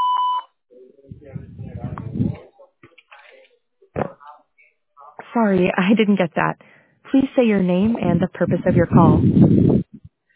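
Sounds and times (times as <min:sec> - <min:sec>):
short electronic call-screening beep: 0:00.0 - 0:00.5
speech: 0:05.4 - 0:09.9.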